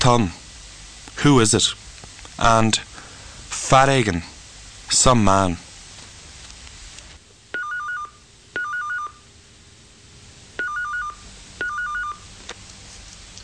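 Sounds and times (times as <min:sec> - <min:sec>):
speech: 0:00.0 - 0:00.4, 0:01.2 - 0:01.8, 0:02.4 - 0:02.9, 0:03.7 - 0:04.3, 0:04.9 - 0:05.7
faint hiss: 0:00.0 - 0:13.4
telephone ringing with electronic warbling trills: 0:07.6 - 0:09.2, 0:10.6 - 0:12.2.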